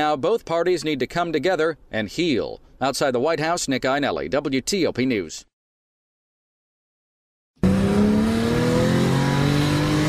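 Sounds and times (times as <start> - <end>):
speech: 0.0 - 5.5
Porsche 911 sports car engine revving: 7.6 - 10.0.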